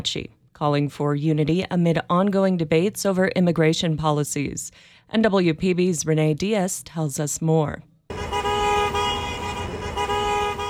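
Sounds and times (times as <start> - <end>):
speech: 0.0 - 7.9
car horns honking at protesters as vehicles pass a park on a chilly November day: 8.1 - 10.6
low traffic rumble: 8.1 - 10.6.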